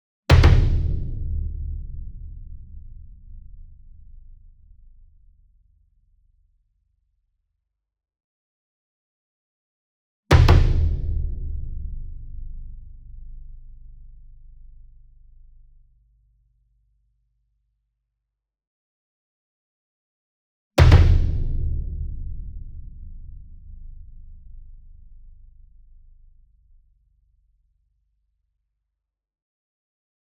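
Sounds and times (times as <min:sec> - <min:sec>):
40 inch concert bass drum hit with double hard beater: 0:00.3 - 0:05.0, 0:10.3 - 0:14.0, 0:20.8 - 0:25.4.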